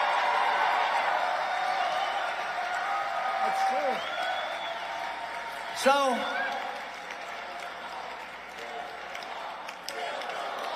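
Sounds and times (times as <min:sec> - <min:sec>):
people cheering: 0:00.0 - 0:10.7
people clapping: 0:00.0 - 0:10.7
speech: 0:05.8 - 0:06.4
large crowd chanting a slogan in unison: 0:07.5 - 0:10.7.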